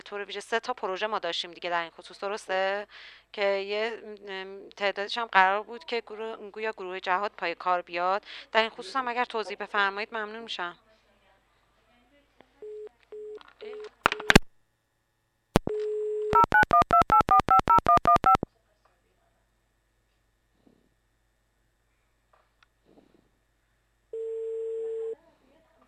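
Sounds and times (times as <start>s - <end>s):
speech: 0.1s - 10.8s
phone keypad tones: 15.6s - 18.4s
phone line short beeps and clicks: 15.6s - 18.4s, 24.2s - 25.2s
steady telephone dial tone: 15.7s - 18.4s, 24.2s - 25.2s.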